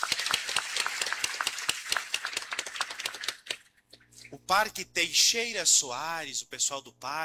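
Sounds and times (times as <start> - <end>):
crowd at a public gathering applauding: 0.0 - 3.6
speech: 4.5 - 7.2.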